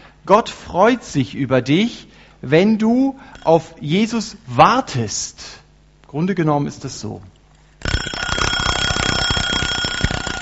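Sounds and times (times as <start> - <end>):
speech: 0.3 - 7.3
alarm clock ringing with a loud rapid metallic clatter: 7.8 - 10.4.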